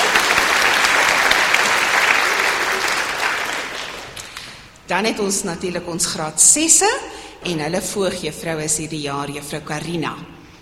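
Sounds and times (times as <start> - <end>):
applause from a sizeable audience: 0.0 - 4.6
speech: 4.9 - 10.4.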